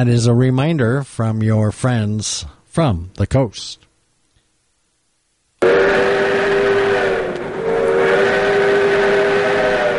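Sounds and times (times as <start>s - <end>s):
speech: 0.0s - 3.9s
low rumble of the running steam train in a redwood forest: 5.6s - 9.9s
restored steam locomotive whistle blasting in a redwood forest: 5.6s - 9.9s.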